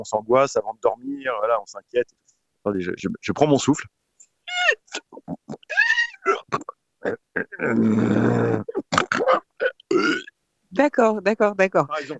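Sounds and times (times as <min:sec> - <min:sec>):
speech: 0:00.0 - 0:05.4, 0:07.0 - 0:12.1
person imitating a wild beast's grunting: 0:04.5 - 0:10.3.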